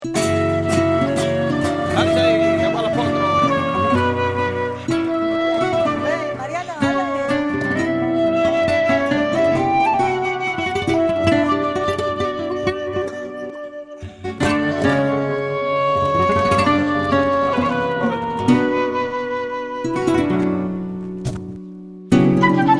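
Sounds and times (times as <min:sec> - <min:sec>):
flamenco flute: 0:00.0 - 0:21.4, 0:22.2 - 0:22.7
farruca zapateado flamenco footwork: 0:00.0 - 0:22.7.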